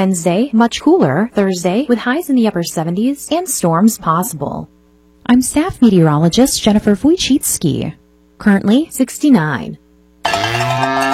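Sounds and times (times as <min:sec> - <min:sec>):
speech: 0:00.0 - 0:10.6
cattle mooing: 0:10.2 - 0:11.1.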